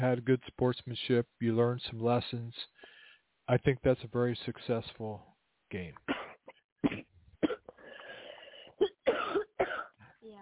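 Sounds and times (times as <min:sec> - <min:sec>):
speech: 0:00.0 - 0:02.7, 0:03.5 - 0:07.1
raspy wheezing breath: 0:02.8 - 0:03.3, 0:07.8 - 0:08.8
harsh barking coughs: 0:06.1 - 0:10.0.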